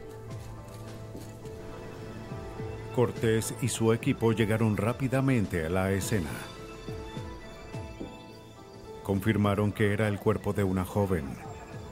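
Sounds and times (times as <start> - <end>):
horse hooves clip-clopping: 0.0 - 2.8
speech: 3.0 - 6.5, 9.1 - 11.5.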